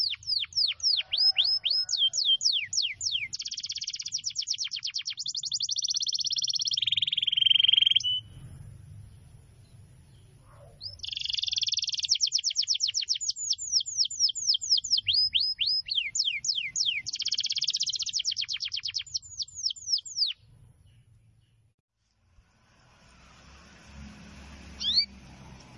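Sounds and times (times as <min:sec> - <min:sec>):
canary singing long continuous song: 0:00.0 - 0:08.4, 0:10.6 - 0:21.7, 0:24.8 - 0:25.1.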